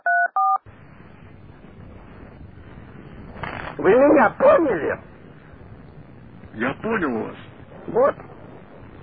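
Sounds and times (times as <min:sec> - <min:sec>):
dual-pitched telephone keypad tones: 0:00.0 - 0:00.6
low rumble: 0:00.7 - 0:09.0
speech: 0:03.8 - 0:05.1, 0:06.6 - 0:08.2.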